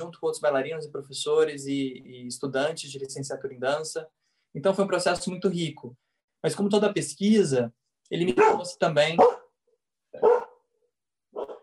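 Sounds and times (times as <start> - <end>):
speech: 0.1 - 9.4
dog barking with short sharp woofs: 8.4 - 9.5, 10.2 - 10.6, 11.3 - 11.6.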